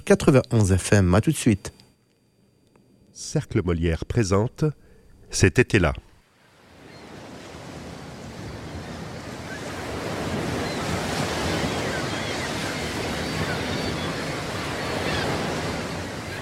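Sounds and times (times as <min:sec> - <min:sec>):
speech: 0:00.1 - 0:01.8, 0:03.2 - 0:06.0
ocean surf rolling onto a beach: 0:06.3 - 0:16.4.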